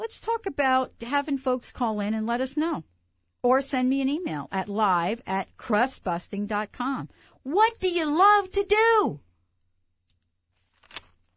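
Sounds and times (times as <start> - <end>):
speech: 0.1 - 9.2
papers shuffled while someone writes a question down: 10.5 - 11.3.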